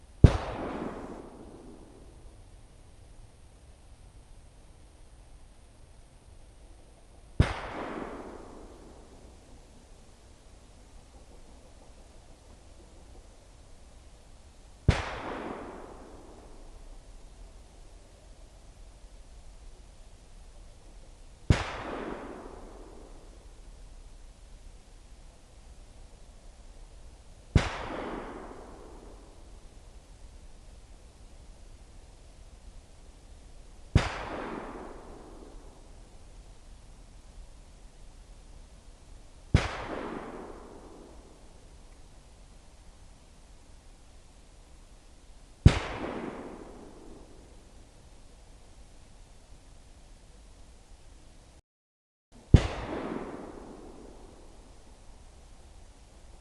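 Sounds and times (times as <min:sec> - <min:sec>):
AK5 rifle gunshot in a valley field forest behind buildings: 0:00.2 - 0:02.3, 0:07.4 - 0:09.4, 0:14.8 - 0:16.8, 0:21.5 - 0:23.4, 0:27.5 - 0:29.5, 0:33.9 - 0:35.9, 0:39.5 - 0:41.5, 0:45.6 - 0:47.6, 0:52.5 - 0:54.7.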